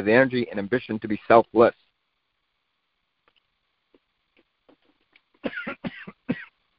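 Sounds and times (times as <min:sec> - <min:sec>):
speech: 0:00.0 - 0:01.8
person with a tickle in the throat clearing throat: 0:05.4 - 0:06.5
person with a tickle in the throat coughing: 0:05.4 - 0:06.5.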